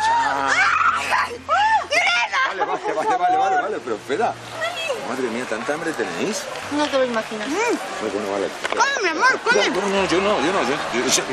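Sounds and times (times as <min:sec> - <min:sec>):
woman shrieking excitedly: 0:00.0 - 0:02.6
laughter: 0:00.5 - 0:03.9, 0:09.5 - 0:11.3
speech: 0:02.9 - 0:04.5, 0:05.1 - 0:11.3.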